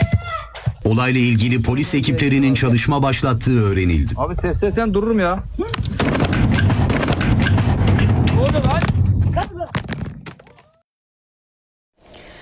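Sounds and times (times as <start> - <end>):
speech: 0.8 - 6.0
rapid loud barrage of explosions from a fireworks factory: 3.4 - 10.4
crackling pops from a fireworks factory: 4.9 - 10.6.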